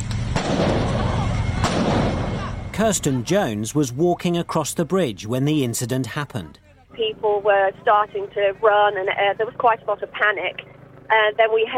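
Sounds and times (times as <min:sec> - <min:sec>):
noisy background: 0:00.0 - 0:11.7
gunshots fired by armed officers: 0:00.2 - 0:02.6
speech: 0:02.8 - 0:11.7.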